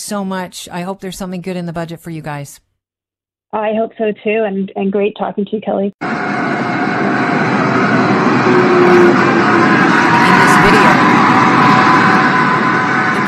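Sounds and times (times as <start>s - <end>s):
speech: 0.1s - 2.7s, 3.5s - 6.3s, 8.5s - 11.0s
heavy dump truck engine droning while pushing a small car: 6.0s - 13.2s.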